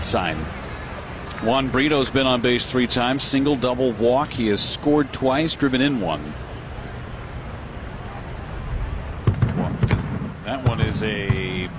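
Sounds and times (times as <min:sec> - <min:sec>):
steady murmur: 0:00.0 - 0:11.7
speech: 0:00.1 - 0:00.6, 0:01.4 - 0:06.6, 0:10.9 - 0:11.7
distant fireworks or cannon fire booms: 0:09.2 - 0:11.7.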